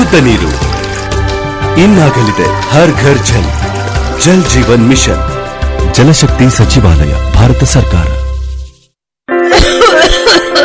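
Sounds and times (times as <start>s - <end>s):
speech: 0.1s - 0.7s, 1.8s - 5.3s, 5.9s - 8.2s
person with a long-lasting cough coughing: 9.5s - 10.6s.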